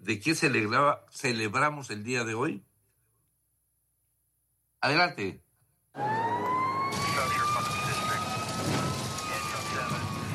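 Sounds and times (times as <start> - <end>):
speech: 0.0 - 2.7, 4.8 - 5.4, 6.0 - 6.5
emergency vehicle siren wailing: 6.0 - 10.3
rain-like noise: 6.8 - 10.3.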